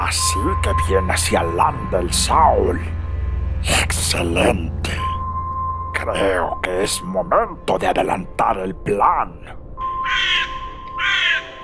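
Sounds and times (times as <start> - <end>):
speech: 0.1 - 3.0, 3.6 - 5.0, 6.0 - 10.2
crow cawing: 10.0 - 11.6.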